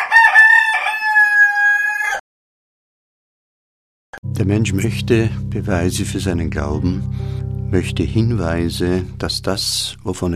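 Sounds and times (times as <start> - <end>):
rooster crowing: 0.0 - 2.2
speech: 4.2 - 10.3.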